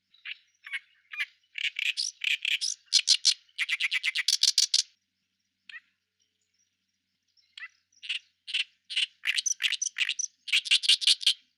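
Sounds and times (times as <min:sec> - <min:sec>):
ooyoshikiri bird calling: 0:00.0 - 0:04.9, 0:07.6 - 0:11.4.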